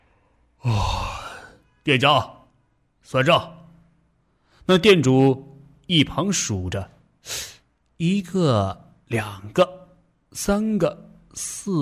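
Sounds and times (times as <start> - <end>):
drunken man yawning: 0.6 - 1.6
speech: 1.8 - 2.4, 3.0 - 3.6, 4.7 - 11.8.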